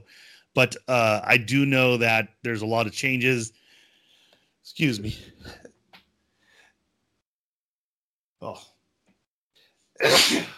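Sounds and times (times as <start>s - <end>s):
speech: 0.1s - 3.6s, 4.7s - 5.7s, 8.4s - 8.7s, 10.0s - 10.5s
sneeze: 10.0s - 10.5s.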